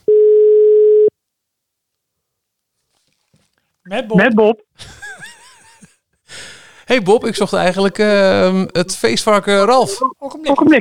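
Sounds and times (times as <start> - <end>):
telephone tone during an outgoing call: 0.0 - 1.1
speech: 3.9 - 5.0, 6.9 - 10.7
laughter: 4.8 - 6.0.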